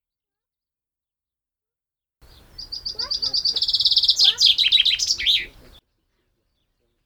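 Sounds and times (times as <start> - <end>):
common chaffinch Fringilla coelebs song: 2.2 - 7.0.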